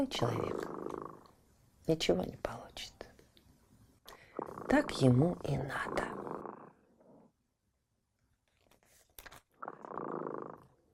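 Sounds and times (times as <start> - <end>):
speech: 0.0 - 0.7, 1.9 - 3.0, 4.7 - 6.1
cat purring: 0.0 - 1.4, 4.1 - 7.4, 9.5 - 10.9.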